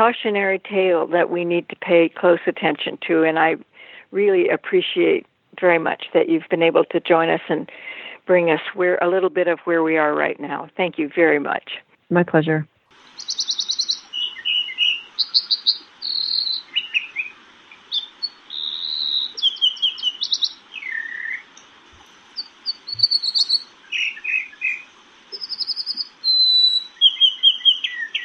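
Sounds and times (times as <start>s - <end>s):
speech: 0.0s - 13.4s
American dipper song: 13.0s - 21.6s, 22.4s - 28.2s.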